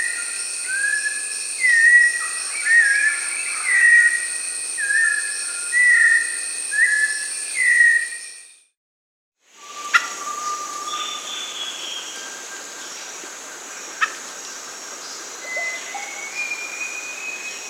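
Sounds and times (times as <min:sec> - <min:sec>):
White-necked thrush Turdus albicollis whistles in South America: 0:00.0 - 0:08.8, 0:09.5 - 0:12.8, 0:15.4 - 0:17.6.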